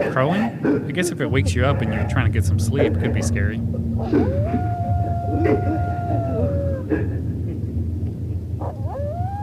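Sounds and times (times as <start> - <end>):
speech: 0.0 - 4.7, 5.4 - 5.9
heavy low rumble: 0.8 - 9.4
wolf howling: 1.4 - 7.4, 8.6 - 9.4.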